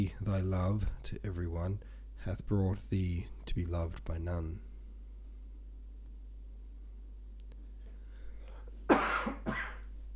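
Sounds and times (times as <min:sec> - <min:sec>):
speech: 0:00.0 - 0:04.7
quiet hum: 0:00.0 - 0:10.1
person coughing harshly: 0:08.9 - 0:09.9.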